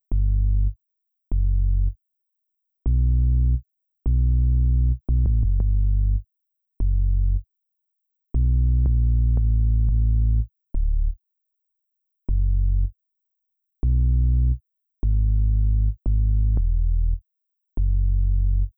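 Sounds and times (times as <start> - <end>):
sine wave sub bass with almost no overtones in future bass style: 0.0 - 2.0, 2.9 - 6.2, 6.8 - 7.4, 8.4 - 11.2, 12.3 - 12.9, 13.8 - 17.2, 17.8 - 18.7.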